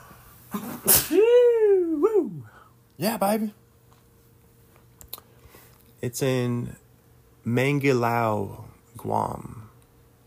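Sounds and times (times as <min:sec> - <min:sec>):
person sneezing: 0:00.5 - 0:01.4
person exclaiming: 0:00.9 - 0:02.5
speech: 0:03.0 - 0:03.6, 0:06.0 - 0:06.8, 0:07.4 - 0:09.6.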